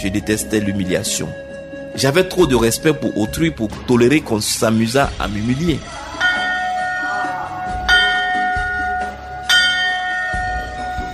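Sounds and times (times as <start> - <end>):
speech: 0.0 - 6.2
gong struck and ringing with shimmering sustain: 6.1 - 11.1.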